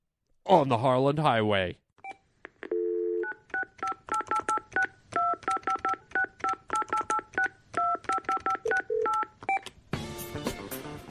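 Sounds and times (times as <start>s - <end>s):
speech: 0.5s - 1.8s
telephone keypad two-tone dialing beeps: 2.0s - 9.7s.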